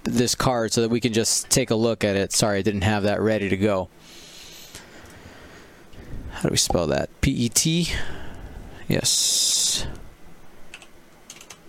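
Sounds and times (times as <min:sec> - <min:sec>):
speech: 0:00.1 - 0:04.2, 0:06.3 - 0:08.2, 0:08.9 - 0:10.0
typing on a computer keyboard: 0:10.7 - 0:11.6.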